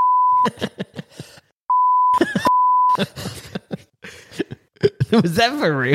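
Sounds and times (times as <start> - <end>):
high-pitched electronic censor bleep: 0.0 - 0.4, 1.7 - 3.0
laughter: 0.3 - 1.5, 2.2 - 5.9
speech: 0.4 - 1.3, 5.1 - 5.9.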